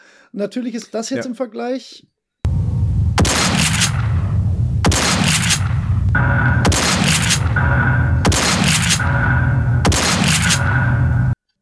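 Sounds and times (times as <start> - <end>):
speech: 0.3 - 2.1
old video game shotgun blasts with metallic ringing tail: 2.5 - 11.4.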